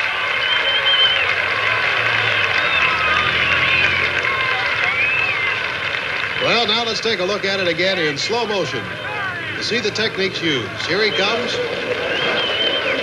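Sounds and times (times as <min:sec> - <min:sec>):
large crowd roaring and cheering at a motorcycle jump over 15 cars: 0:00.0 - 0:13.0
shrill whistles: 0:00.2 - 0:06.4, 0:10.9 - 0:13.0
speech: 0:06.6 - 0:09.0, 0:09.6 - 0:12.1.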